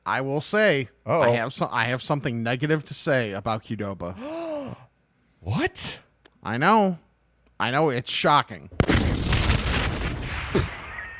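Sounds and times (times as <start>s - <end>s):
speech: 0.1s - 4.4s, 5.4s - 7.0s, 7.6s - 8.8s, 10.5s - 10.7s
explosion sound effect: 8.7s - 11.1s.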